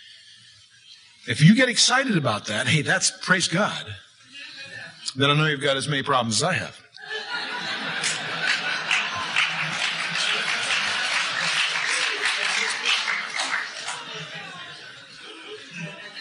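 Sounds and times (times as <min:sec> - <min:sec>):
speech: 0:01.2 - 0:04.1, 0:05.2 - 0:06.8
crowd laughter and chuckles: 0:07.0 - 0:16.2
crowd applause: 0:07.4 - 0:15.0.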